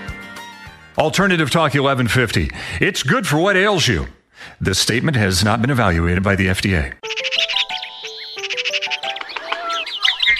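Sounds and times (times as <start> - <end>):
speech: 1.0 - 7.3
birds chirping in the morning: 7.0 - 10.3.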